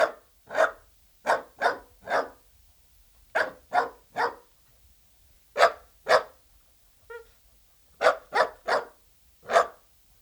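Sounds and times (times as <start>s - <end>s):
Dachshund barking: 0.0s - 2.4s, 3.4s - 4.5s, 5.6s - 6.4s, 8.0s - 9.8s.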